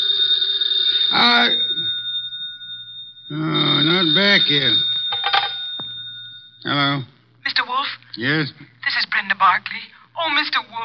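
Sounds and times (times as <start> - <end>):
telephone bell ringing: 0.0 - 6.9
speech: 4.1 - 4.9, 8.2 - 8.7, 9.4 - 10.8.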